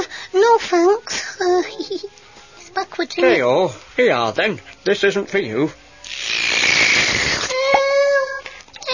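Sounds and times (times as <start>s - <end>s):
speech: 0.5s - 5.8s
fizzy pop bottle hissing: 6.0s - 7.8s.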